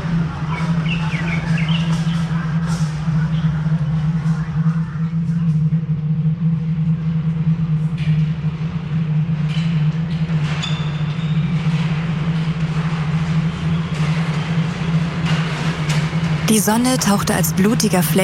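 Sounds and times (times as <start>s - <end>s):
train engine drone arriving at a station: 0.0s - 10.6s, 11.4s - 18.2s
train metallic clanks and squeals: 10.4s - 12.0s
speech: 16.6s - 18.2s.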